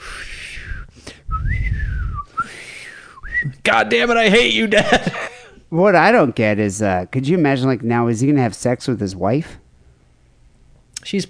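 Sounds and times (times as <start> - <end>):
person imitating thin airy whistling from a nose: 0.0 - 3.6
speech: 3.6 - 9.6, 11.0 - 11.2
laughter: 4.3 - 5.6.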